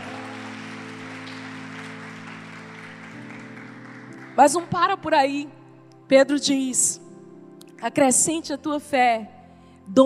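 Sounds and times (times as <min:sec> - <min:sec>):
sustained keyboard or organ chords: 0:00.0 - 0:04.3
church audience applauding during a sermon: 0:00.0 - 0:04.5
speech: 0:04.4 - 0:07.0, 0:07.8 - 0:10.0.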